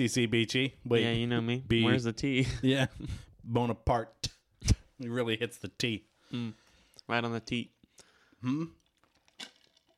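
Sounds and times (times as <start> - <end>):
speech: 0.0 - 7.8, 8.4 - 8.8
quiet mouth noises: 8.4 - 8.9
sipping coffee with a wet slurp: 8.7 - 9.9.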